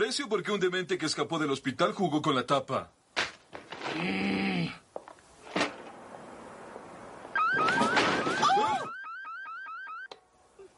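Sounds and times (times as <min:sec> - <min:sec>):
speech: 0:00.0 - 0:03.0, 0:03.9 - 0:04.8
electronic alarm wailing in upward sweeps: 0:07.4 - 0:10.1.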